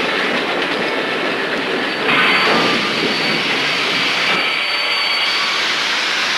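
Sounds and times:
passenger train rolling to a stop: 0.0 - 6.3
train wheels clacking on rails: 0.0 - 6.3
faint metallic squeals of train: 1.9 - 6.1.

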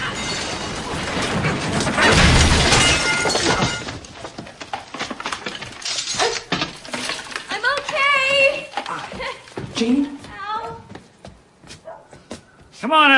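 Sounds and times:
falling debris: 0.0 - 8.9
wooden staircase collapsing as someone falls through: 0.0 - 10.0.

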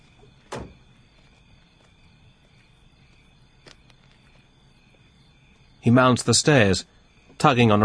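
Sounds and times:
quiet outdoor ambience: 0.0 - 7.8
car door clunk as a man climbs out of his parked car: 0.5 - 0.8
speech: 5.8 - 7.8.

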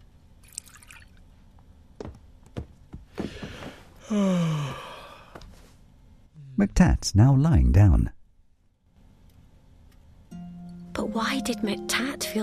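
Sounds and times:
water drips: 0.4 - 1.2
speech: 4.1 - 4.8, 6.6 - 8.2, 11.2 - 12.4.

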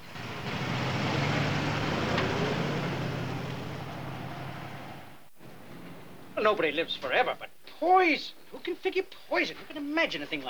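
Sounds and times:
road and exhaust noise: 0.0 - 7.0
car engine humming as the vehicle pulls away: 0.0 - 7.2
speech: 6.4 - 10.4.

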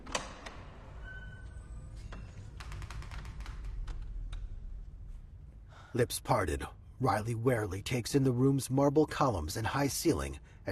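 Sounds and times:
double doors creaking as pushed open: 0.0 - 4.5
speech: 6.0 - 10.6.

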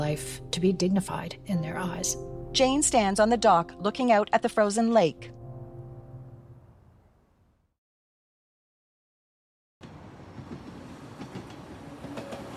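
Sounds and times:
speech: 0.1 - 5.4
train moving slowly along track: 9.8 - 12.5.

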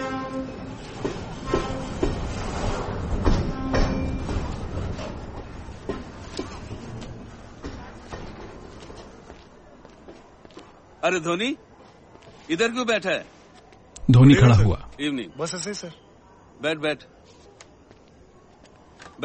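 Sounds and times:
train rumbling and clattering along the rails at a railway station platform at night: 0.0 - 7.3
speech: 11.1 - 11.7, 12.5 - 13.4, 14.1 - 16.0, 16.6 - 17.2.

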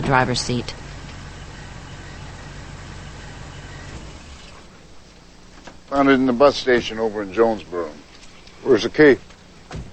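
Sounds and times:
truck engine idling after pulling to a stop: 0.0 - 5.0
speech: 0.1 - 0.8, 5.9 - 8.0, 8.6 - 9.8.

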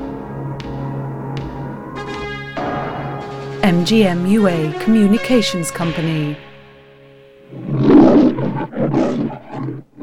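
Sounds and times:
speech: 3.8 - 6.5
lion roaring in rough growling bursts: 7.5 - 10.0.

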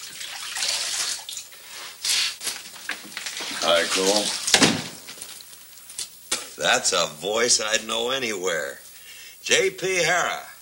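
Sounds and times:
water splashing in a basin as a man washes his face: 0.0 - 1.5, 2.8 - 5.5
speech: 3.0 - 4.8, 6.6 - 8.8, 9.5 - 10.5.

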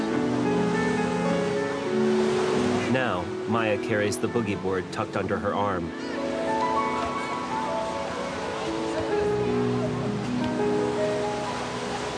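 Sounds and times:
surf washing in at an ocean beach: 0.0 - 12.1
speech: 3.0 - 6.2.

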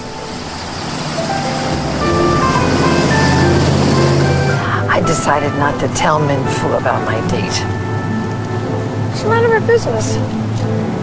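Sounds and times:
station wagon engine hum: 0.0 - 11.0
station wagon road rumble driving around a corner: 0.0 - 11.0
faint tonal whines: 1.4 - 5.4
speech: 5.3 - 7.8, 9.2 - 10.8.

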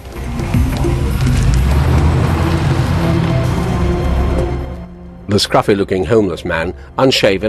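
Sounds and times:
car engine starting and pulling away: 0.0 - 5.2
speech: 5.4 - 7.4.

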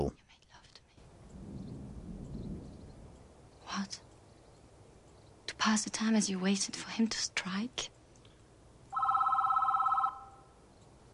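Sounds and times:
speech: 5.7 - 8.0
telephone ringing with a warbling high-pitched burst: 8.9 - 10.6.

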